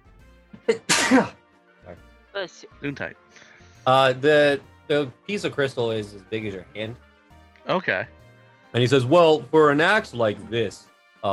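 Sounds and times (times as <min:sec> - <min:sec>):
single loud sneeze: 0:00.7 - 0:01.4
speech: 0:00.7 - 0:07.0, 0:07.7 - 0:11.3.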